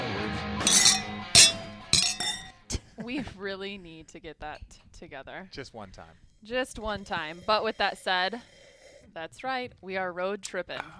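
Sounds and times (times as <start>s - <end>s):
glasses clinking in a toast: 0.6s - 2.6s
speech: 3.1s - 10.9s.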